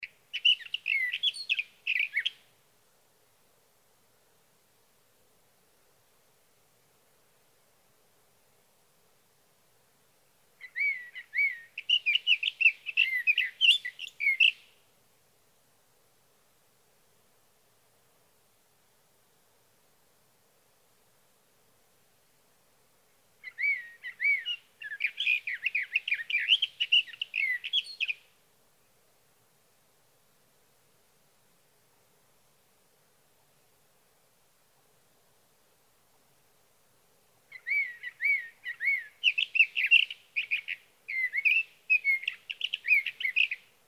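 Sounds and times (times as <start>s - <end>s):
Sage Thrasher singing through the night: 0.4s - 2.4s, 10.6s - 14.6s, 23.4s - 28.2s, 37.5s - 43.6s.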